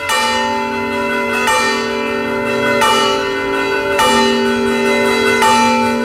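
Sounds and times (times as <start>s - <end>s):
church bells swinging and ringing in a peal: 0.0s - 6.0s.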